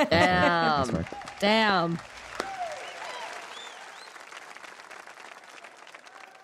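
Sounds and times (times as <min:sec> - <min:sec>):
laughter: 0:00.0 - 0:01.2
crowd applauding: 0:00.0 - 0:06.4
speech: 0:00.8 - 0:02.2
whoops and whistles: 0:02.4 - 0:04.2.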